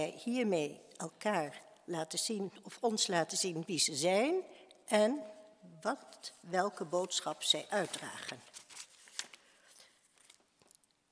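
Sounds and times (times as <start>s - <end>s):
speech: 0.0s - 8.6s
sheet of paper from a speaker's text being turned: 7.8s - 9.5s.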